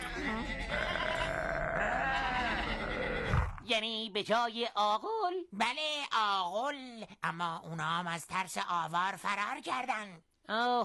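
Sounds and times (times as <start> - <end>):
sheep bleating: 0.0 - 3.6
speech: 3.8 - 10.8.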